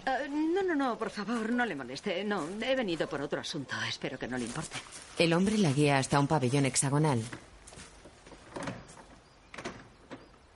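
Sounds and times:
speech: 0.0 - 7.5
door opening with rattling scrape: 8.3 - 10.3.

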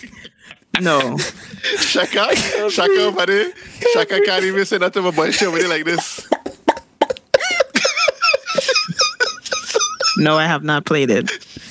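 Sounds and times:
laughter: 0.0 - 11.5
speech: 0.8 - 6.2, 10.2 - 11.4
woman hiccuping with sharp voiced gulps: 6.3 - 7.4.

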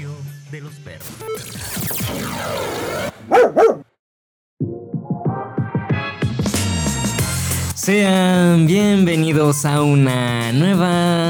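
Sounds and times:
speech: 0.5 - 3.1, 7.9 - 11.2
dogs barking: 3.3 - 3.9
busy musical backdrop: 4.7 - 11.2.

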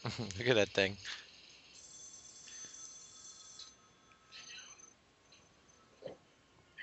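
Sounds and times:
speech: 0.0 - 1.2
telephone ringing with a high steady trilling tone: 1.6 - 6.0.

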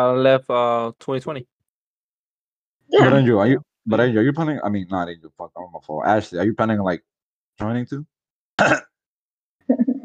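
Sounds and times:
speech: 0.0 - 1.6, 2.9 - 8.9, 9.7 - 9.9
harsh cough: 8.6 - 9.0
low rumbling throat clearing: 8.6 - 9.0.

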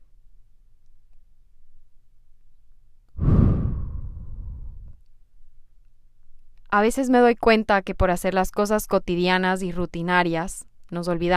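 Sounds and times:
deep breath exhaled as a long breathy sigh: 3.2 - 5.0
speech: 6.7 - 11.3.

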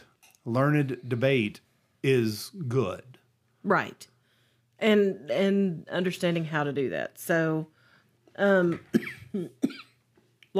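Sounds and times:
speech: 0.4 - 4.1, 4.8 - 7.8, 8.4 - 9.9
person coughing in a sudden fit: 8.8 - 10.0.

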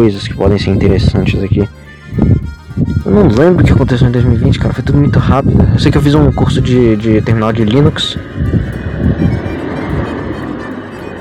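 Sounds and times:
speech: 0.0 - 9.4
cars passing by with engine and road noise: 6.0 - 11.1.

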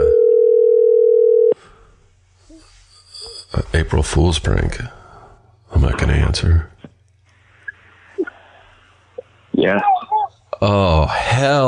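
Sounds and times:
telephone dial tone while placing a call: 0.0 - 1.6
speech: 3.6 - 5.0, 5.7 - 6.7, 9.6 - 10.0, 10.6 - 11.6.

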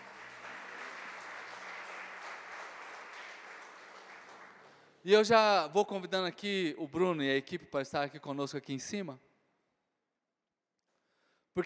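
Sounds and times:
large crowd applauding: 0.0 - 5.0
speech: 5.0 - 9.3.

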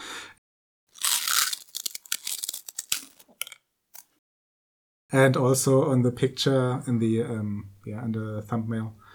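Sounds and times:
people biting into various crunchy cookies: 0.9 - 4.1
speech: 5.1 - 9.0.

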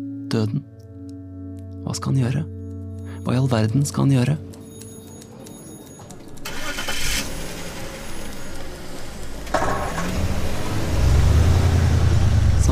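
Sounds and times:
speech: 0.3 - 0.8, 1.9 - 2.6, 3.2 - 4.5
police car engine cranking and starting: 6.1 - 12.7.

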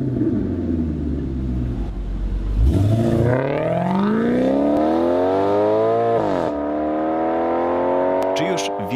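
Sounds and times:
Maserati GranTurismo engine idling and revving with rich exhaust note: 0.0 - 8.9.

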